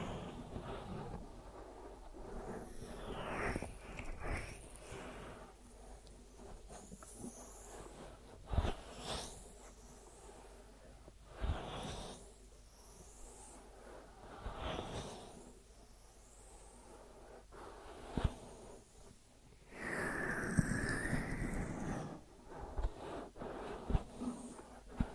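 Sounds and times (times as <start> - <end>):
ear massage rubbing and brushing: 0.0 - 25.1
quiet low hum: 0.0 - 25.1.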